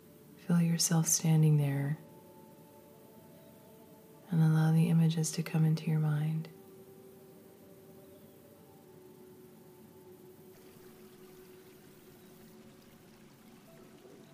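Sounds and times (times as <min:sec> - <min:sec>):
speech: 0:00.5 - 0:02.0, 0:04.4 - 0:06.6
distant trickling stream water: 0:08.4 - 0:14.3.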